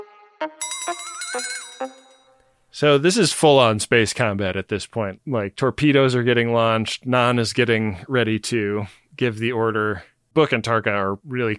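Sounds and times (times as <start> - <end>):
speech: 0.4 - 2.0, 2.8 - 11.5
bell ringing: 0.6 - 2.5.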